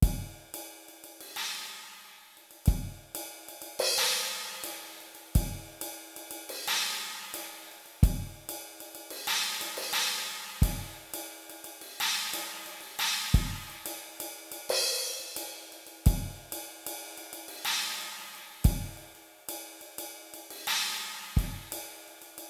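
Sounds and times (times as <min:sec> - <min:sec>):
centered cymbals: 0:00.0 - 0:22.4.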